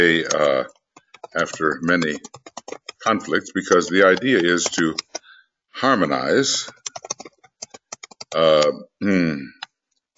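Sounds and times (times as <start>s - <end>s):
speech: 0.0s - 5.2s, 5.8s - 7.3s, 8.3s - 9.6s
typing on a new computer keyboard: 0.0s - 5.3s, 6.1s - 8.7s.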